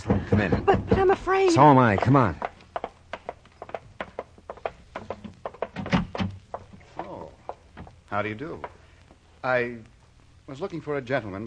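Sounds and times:
speech: 0.0 - 2.5, 8.1 - 8.7, 9.4 - 9.9, 10.5 - 11.4
house front door thumping as it swings: 0.0 - 6.8.

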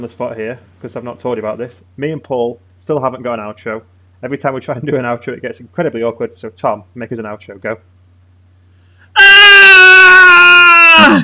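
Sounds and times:
speech: 0.0 - 8.0
person mimicking a high-pitched shriek: 9.2 - 11.2.

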